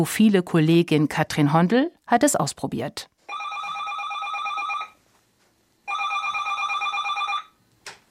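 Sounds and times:
speech: 0.0s - 3.4s
telephone ringing with electronic trill: 3.3s - 5.0s, 5.8s - 7.6s.

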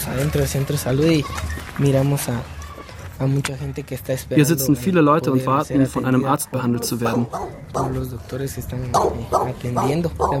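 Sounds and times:
speech: 0.1s - 2.6s, 3.2s - 10.3s
guard dogs barking at a health centre: 6.8s - 8.1s, 8.9s - 10.3s.

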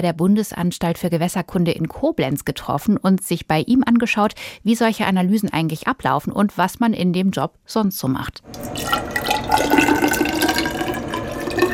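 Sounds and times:
speech: 0.0s - 10.2s
unfiltered river water sample poured into a glass measuring cylinder: 8.5s - 11.7s.

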